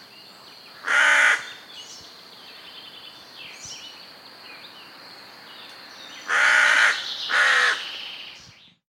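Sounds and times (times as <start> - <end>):
carrion crow Corvus corone cawing: 0.8 - 1.6, 6.3 - 7.8.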